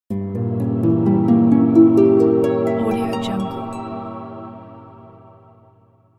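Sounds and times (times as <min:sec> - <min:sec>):
harp in a magic transition: 0:00.1 - 0:05.8.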